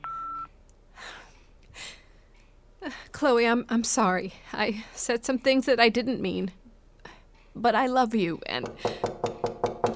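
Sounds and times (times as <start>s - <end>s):
phone keypad tone: 0.0s - 0.5s
speech: 2.9s - 6.6s, 7.6s - 9.1s.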